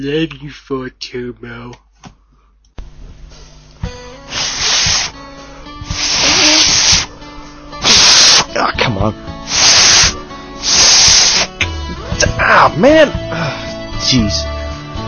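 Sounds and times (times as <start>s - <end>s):
speech: 0.0s - 1.8s, 8.6s - 9.4s, 12.4s - 14.5s
breathy blown air bursts from failed whistling attempts: 4.1s - 8.6s, 9.4s - 11.6s.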